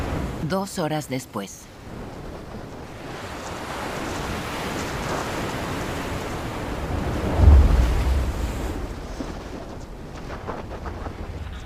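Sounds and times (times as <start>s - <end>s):
heavy ocean surf: 0.0s - 0.6s, 1.7s - 11.6s
speech: 0.5s - 2.0s
strong wind roaring across the microphone: 1.8s - 11.6s
big ocean wave surging and crashing: 3.0s - 9.5s.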